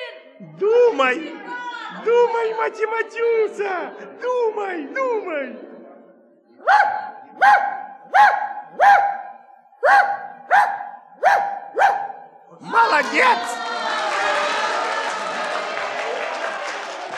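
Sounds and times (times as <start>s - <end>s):
speech: 0.4s - 5.7s, 13.0s - 13.6s
dog barking: 6.6s - 12.4s
crowd applauding and cheering: 12.7s - 17.1s.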